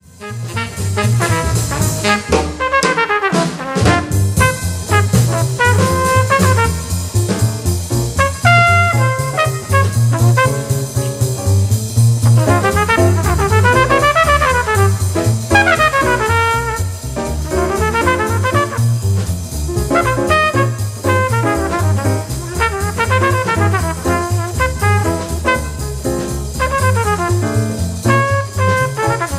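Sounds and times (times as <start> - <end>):
solo jazz trumpet: 0.0 - 29.3.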